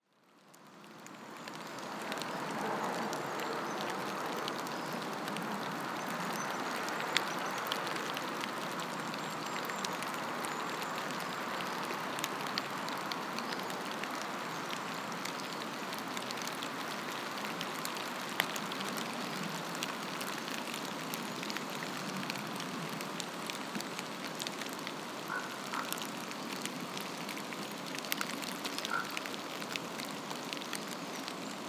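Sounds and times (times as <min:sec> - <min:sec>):
forest rain: 0:00.0 - 0:31.6.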